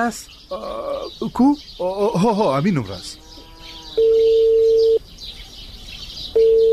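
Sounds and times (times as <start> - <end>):
speech: 0.0 - 3.2, 4.0 - 4.4
faint high chirping: 0.0 - 6.7
ringback tone of an unanswered phone call: 4.0 - 5.0, 6.4 - 6.7.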